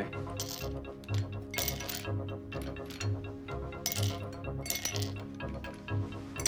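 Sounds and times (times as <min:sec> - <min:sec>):
ice cubes dropped into a glass in a hotel room: 0:00.4 - 0:03.2, 0:03.8 - 0:05.8.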